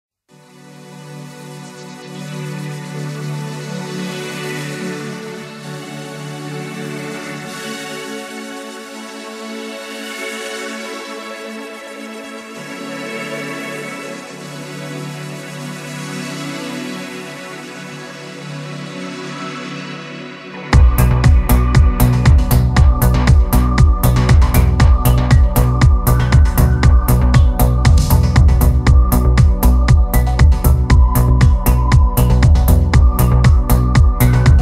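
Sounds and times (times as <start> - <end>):
keyboard modern beat: 20.6 - 34.6.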